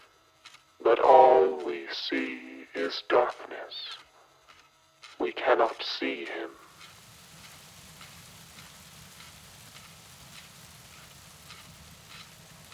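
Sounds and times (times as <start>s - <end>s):
speech: 0.8s - 4.1s, 5.2s - 6.6s
steady rain falling: 6.5s - 12.7s.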